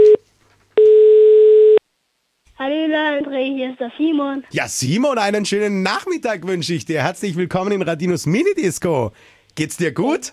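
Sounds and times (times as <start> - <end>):
telephone ringback tone while calling: 0.0 - 0.2, 0.8 - 1.8
speech: 3.2 - 10.3.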